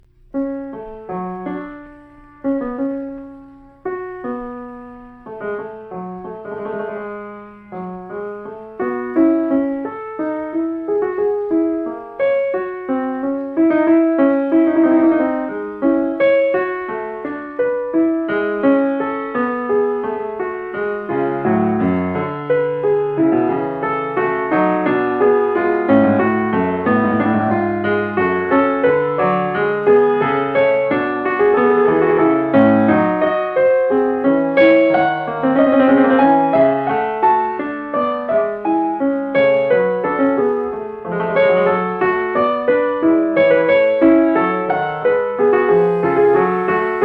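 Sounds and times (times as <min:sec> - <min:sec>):
harpsichord fugue: 0:00.0 - 0:47.0.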